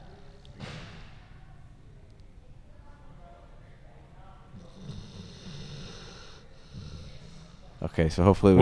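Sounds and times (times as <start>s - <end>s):
dog snoring with deep breaths: 4.5s - 7.9s
speech: 7.9s - 8.5s.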